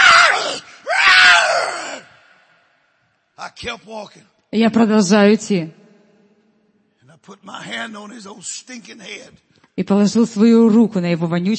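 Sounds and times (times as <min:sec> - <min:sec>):
chained creature screaming harshly: 0:00.0 - 0:02.2
speech: 0:03.6 - 0:05.8, 0:07.2 - 0:11.5.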